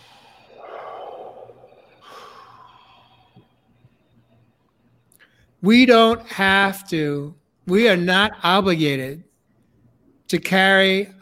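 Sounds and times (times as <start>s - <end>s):
slow deep breath drawn as part of a group pause: 0.0s - 4.2s
speech: 5.6s - 9.3s, 10.3s - 11.2s.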